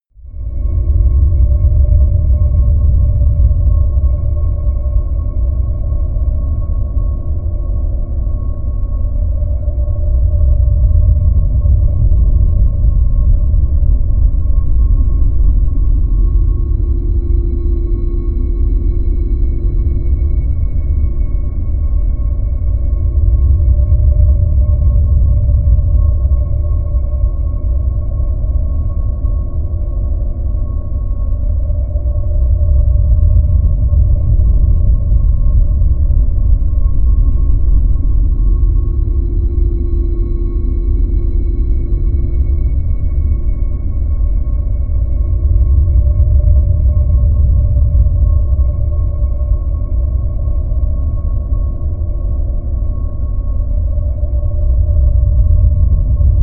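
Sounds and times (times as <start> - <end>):
ghostly drone: 0.2 - 56.4.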